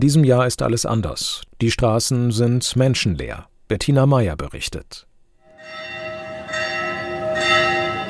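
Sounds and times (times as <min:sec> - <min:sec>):
speech: 0:00.0 - 0:06.0
church bells ringing: 0:05.5 - 0:08.0.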